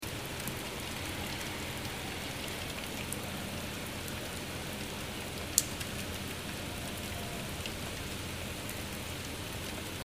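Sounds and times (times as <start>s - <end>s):
rain: 0.0s - 10.0s.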